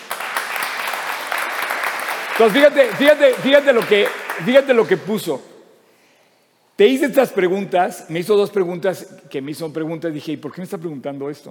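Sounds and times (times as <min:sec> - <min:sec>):
audience applause: 0:00.0 - 0:05.0
speech: 0:02.4 - 0:05.5, 0:06.8 - 0:11.4.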